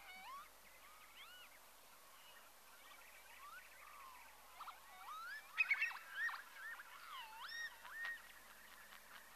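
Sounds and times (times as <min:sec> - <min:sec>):
Northern lapwing calls: 0:00.0 - 0:01.5, 0:03.9 - 0:09.3.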